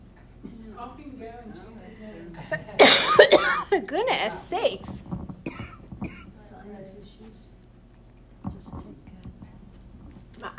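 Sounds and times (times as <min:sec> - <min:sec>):
speech: 0:00.8 - 0:02.9, 0:03.7 - 0:05.1
person coughing during a prayer service: 0:02.6 - 0:03.8, 0:05.5 - 0:06.3.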